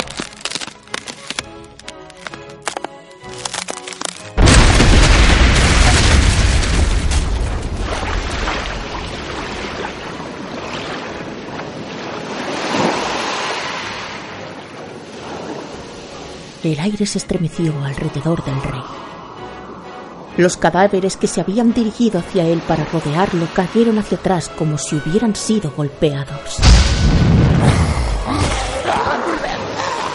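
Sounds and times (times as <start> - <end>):
frozen surface cracking from impact: 0.0 - 8.9
salt water surging up through ice: 4.0 - 16.6, 21.4 - 24.3, 28.6 - 30.1
speech: 16.7 - 19.0, 20.4 - 28.4.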